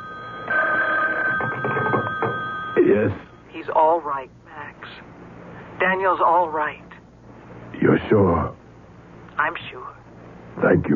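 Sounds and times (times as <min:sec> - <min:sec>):
telephone bell ringing with trilling electronic tone: 0:00.0 - 0:03.4
speech: 0:03.0 - 0:04.4, 0:05.8 - 0:06.8, 0:07.8 - 0:08.6, 0:09.4 - 0:10.0, 0:10.6 - 0:10.9.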